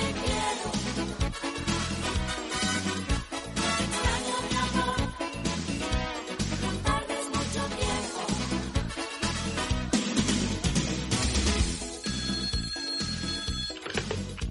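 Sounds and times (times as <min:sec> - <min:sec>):
dense loud music: 0:00.0 - 0:12.2
telephone ringing with electronic tone: 0:11.8 - 0:14.4.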